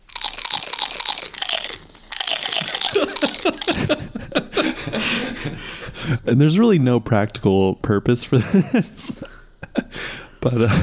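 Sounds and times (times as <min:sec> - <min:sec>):
potato chip crunch sounds played on keyboard: 0:00.0 - 0:03.9
laughter: 0:02.7 - 0:06.3, 0:08.3 - 0:10.8
speech: 0:03.4 - 0:09.4, 0:10.4 - 0:10.8.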